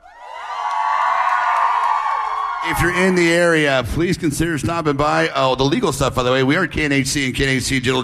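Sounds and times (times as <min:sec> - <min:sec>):
high shouts: 0:00.0 - 0:03.3
nightclub crowd cheering and whooping at a live club night in Seattle: 0:00.0 - 0:03.6
speech: 0:02.6 - 0:08.0.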